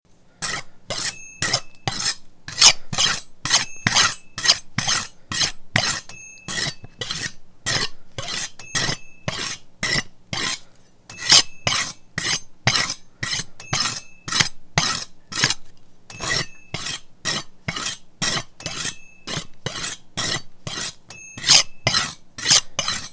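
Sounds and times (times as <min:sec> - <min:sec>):
chef sharpening knife: 0:00.4 - 0:10.6, 0:11.2 - 0:23.1.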